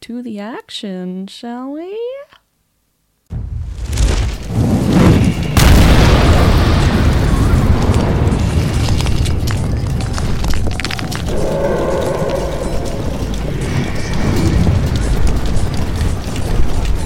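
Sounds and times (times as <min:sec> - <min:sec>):
speech: 0:00.1 - 0:02.4
fireball explosion about 30 feet away: 0:03.3 - 0:10.2, 0:11.1 - 0:16.4
long loud rumbling roar of explosion: 0:04.5 - 0:09.6, 0:10.8 - 0:16.9.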